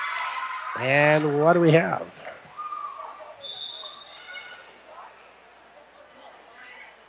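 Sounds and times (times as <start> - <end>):
murmur of an indoor crowd: 0.0 - 7.0
speech: 0.7 - 2.3
referee's whistle stopping play: 3.4 - 4.5.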